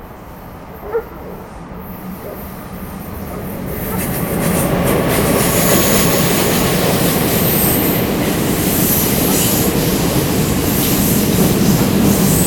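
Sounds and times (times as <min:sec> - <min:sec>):
train rumbling past outdoors: 0:00.0 - 0:12.4
dog barking at a temple entrance: 0:00.8 - 0:01.5, 0:03.8 - 0:04.1.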